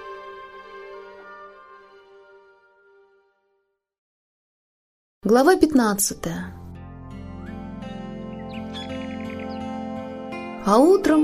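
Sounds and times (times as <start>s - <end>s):
speech: 5.3s - 6.6s, 10.6s - 11.2s
birds chirping and trilling in the morning: 7.2s - 10.6s.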